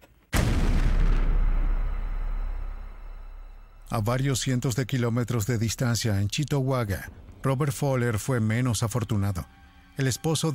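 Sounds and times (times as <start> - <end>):
bomb hidden in a toolbox exploding: 0.3 - 3.9
speech: 3.9 - 10.5.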